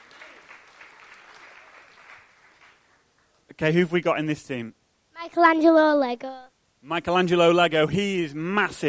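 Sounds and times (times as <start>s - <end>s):
room full of people clapping: 0.0s - 3.4s
speech: 3.6s - 8.8s.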